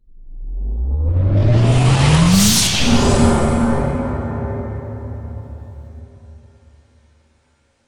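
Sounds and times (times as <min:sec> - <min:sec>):
spaceship entering warp sound effect: 0:01.1 - 0:05.9.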